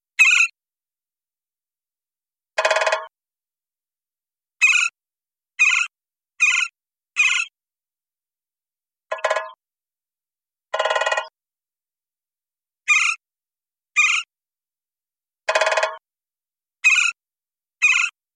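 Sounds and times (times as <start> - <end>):
Gila woodpecker: 0.2 - 0.6, 4.6 - 5.0, 5.6 - 7.5, 9.1 - 9.6, 10.8 - 11.3, 12.9 - 13.2, 14.0 - 14.3, 15.5 - 16.0, 16.8 - 17.2, 17.8 - 18.2.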